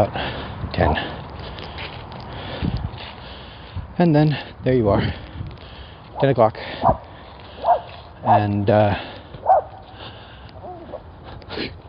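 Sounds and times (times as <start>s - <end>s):
speech: 0.0s - 1.2s, 4.0s - 5.2s, 6.2s - 7.1s, 8.2s - 9.1s
small white puppy barking in high yips: 7.6s - 8.4s, 9.4s - 9.8s.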